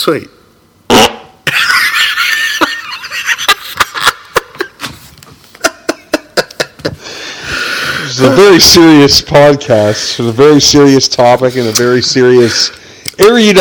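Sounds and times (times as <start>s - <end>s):
speech: 0.0s - 0.4s, 8.1s - 13.6s
loud sputtering fart: 0.9s - 1.4s
laughter: 1.5s - 4.8s, 5.6s - 7.1s.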